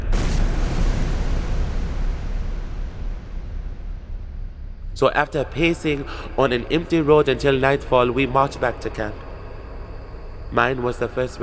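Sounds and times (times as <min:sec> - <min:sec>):
distant cannon fire from a battle between French and Prussian forces: 0:00.0 - 0:04.8
speech: 0:05.0 - 0:09.2, 0:10.5 - 0:11.4.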